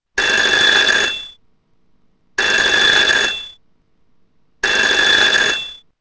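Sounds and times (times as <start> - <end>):
old phone ringing: 0.2 - 1.4, 2.4 - 3.6, 4.6 - 5.8.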